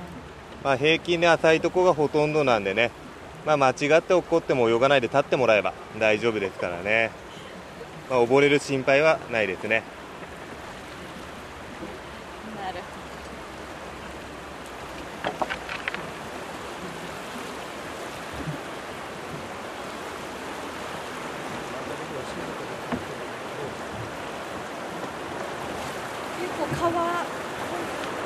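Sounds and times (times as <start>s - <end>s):
river water sloshing against a boat moving along a shallow stony river: 0.0s - 28.2s
speech: 0.6s - 7.2s, 8.1s - 10.0s
brief knocks and splashes: 8.4s - 28.2s.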